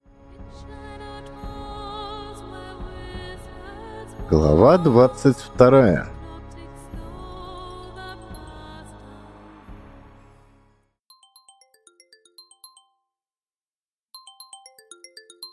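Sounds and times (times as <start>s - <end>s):
speech: 4.3s - 6.2s
mobile phone ringtone with synth chord and plucked-note melody: 8.2s - 8.7s, 11.1s - 13.1s, 14.2s - 15.5s.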